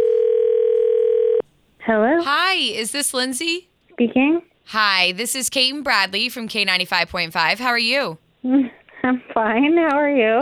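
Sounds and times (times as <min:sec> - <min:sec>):
telephone dial tone while a call is placed: 0:00.0 - 0:01.4
speech: 0:01.9 - 0:10.4.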